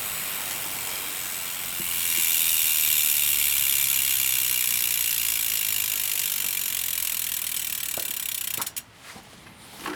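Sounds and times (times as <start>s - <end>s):
electric full-suspension mountain bike rear cassette freewheel ratcheting: 0.0s - 8.9s
sharp clacks: 5.9s - 8.9s.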